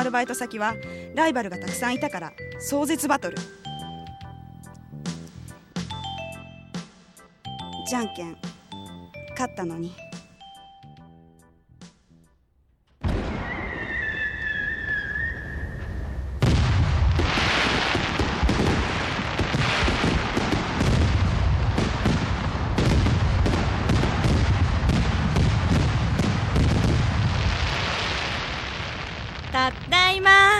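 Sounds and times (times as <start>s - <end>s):
speech: 0.0s - 3.7s, 7.9s - 8.5s, 9.4s - 10.1s
fireworks bursting at a fireworks festival with booms and crackling: 13.0s - 30.5s
high whistle of a firework streaking up: 13.1s - 16.4s.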